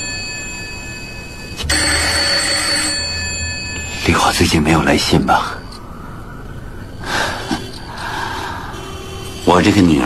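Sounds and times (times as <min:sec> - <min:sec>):
telephone bell ringing: 0:00.0 - 0:05.8, 0:06.8 - 0:10.0
speech: 0:04.0 - 0:05.6, 0:09.5 - 0:10.0.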